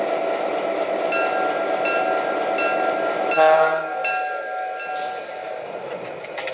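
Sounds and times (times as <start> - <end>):
passenger train rolling into a station: 0.0 - 6.5
high sustained tones over train clatter: 1.1 - 5.8.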